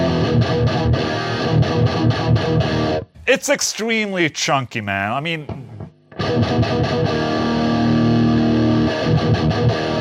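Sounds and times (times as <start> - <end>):
chunky distorted electric guitar through a distortion pedal: 0.0 - 3.2, 5.4 - 9.9
speech: 3.3 - 5.7.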